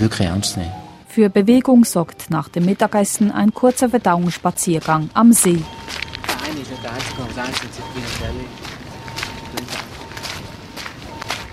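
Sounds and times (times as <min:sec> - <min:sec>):
speech: 0:00.0 - 0:05.9, 0:07.4 - 0:08.4
soft outdoor noise: 0:00.0 - 0:11.5
brisk crisp scuffing footsteps walking outdoors: 0:02.5 - 0:11.5.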